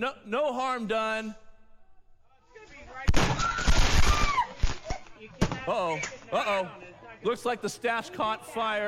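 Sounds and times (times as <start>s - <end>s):
speech: 0.0s - 1.4s, 5.2s - 8.8s
fireworks bangs and crackles: 3.0s - 4.8s
whistling firework streaks: 3.1s - 4.7s.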